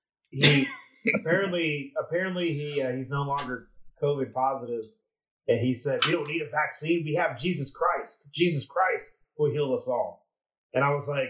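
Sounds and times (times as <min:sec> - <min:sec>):
speech: 0:00.3 - 0:11.2
loud throaty cough: 0:00.4 - 0:01.3.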